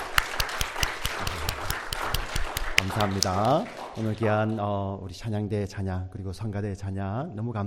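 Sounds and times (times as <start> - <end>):
crowd applauding: 0.0 - 4.8
speech: 2.9 - 7.6.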